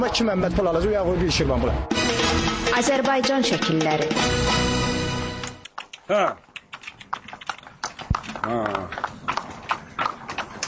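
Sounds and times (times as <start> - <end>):
speech: 0.0 - 4.8, 6.1 - 6.4, 8.4 - 9.0
horse hooves clip-clopping on a village road while pulling a cart of wood: 5.4 - 10.6.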